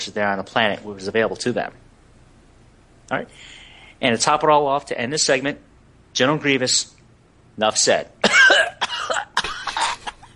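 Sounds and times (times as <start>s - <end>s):
speech: 0.0s - 1.8s, 3.1s - 7.0s, 7.6s - 8.2s
voice imitating a harsh wheezy rheumatic cough: 8.2s - 10.3s.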